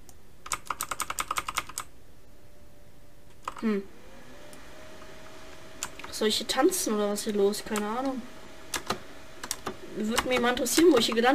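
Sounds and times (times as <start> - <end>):
computer keyboard keys pressed while playing a video game: 0.4 - 1.9, 8.7 - 11.3
speech: 3.6 - 4.0, 6.2 - 8.8, 10.0 - 11.3.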